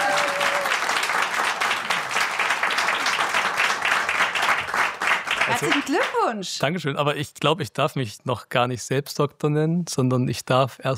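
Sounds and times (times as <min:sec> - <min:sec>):
live audience applause after a doctoral defense: 0:00.0 - 0:06.3
speech: 0:05.5 - 0:10.9.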